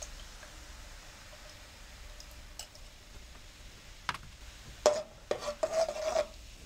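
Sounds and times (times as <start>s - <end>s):
spoon stirring coconut cream with cane sugar in a pot: 1.3s - 3.0s, 4.7s - 6.6s.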